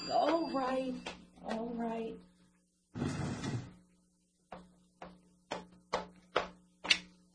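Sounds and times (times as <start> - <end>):
speech: 0.4 - 2.3
chair scraping across the floor: 2.9 - 3.8.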